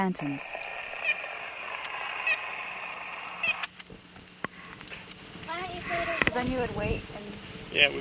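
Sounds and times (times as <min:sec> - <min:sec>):
speech: 0:00.0 - 0:00.7, 0:05.9 - 0:07.9
steady hiss: 0:00.0 - 0:07.9
red-bellied woodpecker calling in rolling trilled notes: 0:00.5 - 0:03.8, 0:05.6 - 0:06.4.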